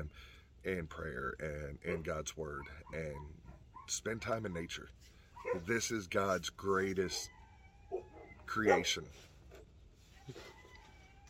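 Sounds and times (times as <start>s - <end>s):
speech: 0.0s - 9.3s, 10.3s - 10.6s
quiet outdoor background: 0.0s - 11.2s
rooster crowing: 7.2s - 8.4s, 10.2s - 11.2s.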